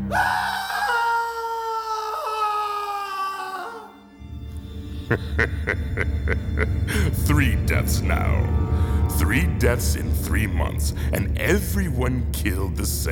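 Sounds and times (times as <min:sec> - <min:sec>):
person screaming at night in a hotel in Linz, Austria: 0:00.0 - 0:04.0
speech: 0:00.1 - 0:00.5, 0:05.1 - 0:13.1
laughter: 0:04.9 - 0:07.9.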